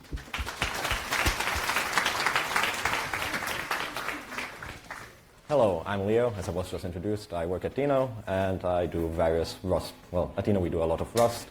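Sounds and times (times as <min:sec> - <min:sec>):
crowd applauding: 0:00.0 - 0:05.2
speech: 0:05.5 - 0:11.4.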